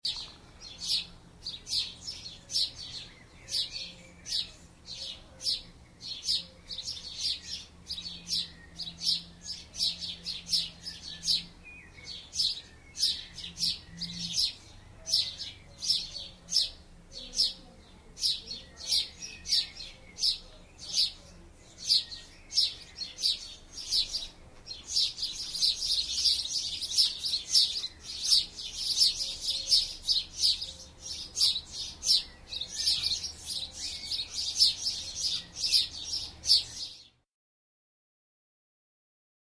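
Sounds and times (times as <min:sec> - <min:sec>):
sparrows: 0:00.0 - 0:37.2.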